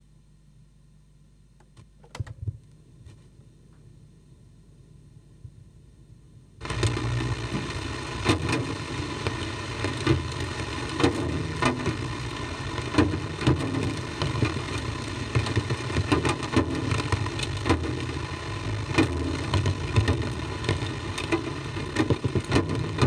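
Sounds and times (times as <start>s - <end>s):
drums in the rain with tape echo over tape recorder loudspeaker: 6.6s - 23.0s
rain: 6.6s - 23.0s.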